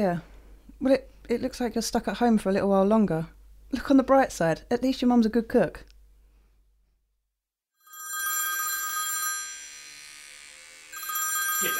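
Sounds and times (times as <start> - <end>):
speech: 0.0 - 5.9
telephone ringing with an electronic trill: 7.8 - 10.0, 10.9 - 11.7.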